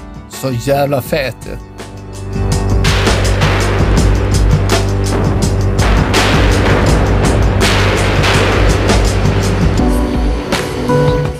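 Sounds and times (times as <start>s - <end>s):
speech: 0.4s - 1.7s
sustained low rumbling drone: 1.9s - 11.3s
loud crashing roar with booming impacts: 2.4s - 11.3s.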